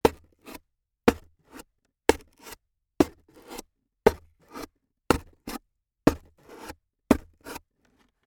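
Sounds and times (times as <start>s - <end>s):
stabbing cardboard: 2.1s - 7.6s.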